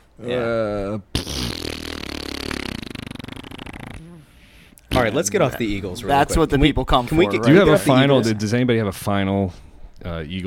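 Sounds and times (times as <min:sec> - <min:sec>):
speech: 0:00.2 - 0:01.2, 0:05.0 - 0:10.4
mouth-made fart noise: 0:01.1 - 0:04.3.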